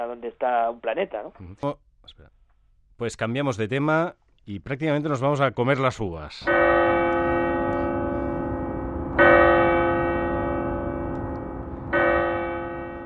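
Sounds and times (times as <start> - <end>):
speech: 0.0 - 2.4, 3.0 - 6.8
clock tower bell striking at midnight: 6.4 - 13.0.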